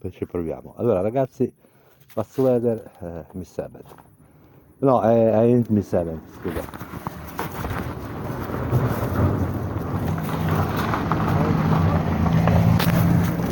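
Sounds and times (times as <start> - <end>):
speech: 0.0 - 4.1, 4.8 - 7.1
car passing by with a broad low rumble: 7.8 - 13.5.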